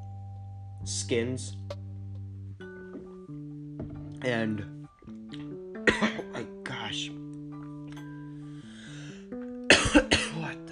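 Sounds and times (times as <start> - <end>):
speech: 0.8 - 1.8, 4.2 - 4.8
person coughing after water went down the throat: 5.9 - 6.4, 9.7 - 10.5.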